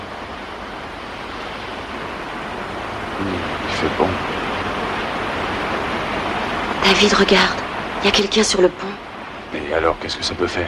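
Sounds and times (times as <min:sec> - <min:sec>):
waves washing at the water's edge at night: 0:00.0 - 0:10.6
speech: 0:03.2 - 0:04.3, 0:06.8 - 0:10.6.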